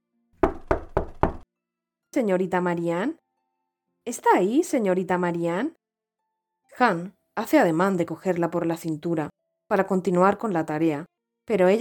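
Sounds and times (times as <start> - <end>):
knocking on a wooden shed door: 0.4 - 1.4
speech: 2.2 - 3.2, 4.0 - 5.8, 6.8 - 11.8.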